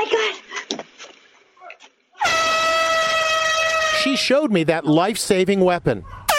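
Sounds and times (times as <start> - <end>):
loud sustained air horn blast: 2.2 - 4.3
speech: 4.0 - 6.2.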